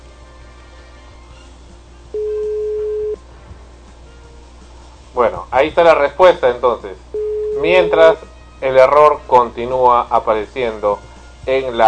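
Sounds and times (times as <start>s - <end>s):
telephone tone for an unanswered outgoing call: 2.2s - 3.2s, 7.2s - 8.1s
speech: 5.2s - 7.0s, 7.6s - 11.8s.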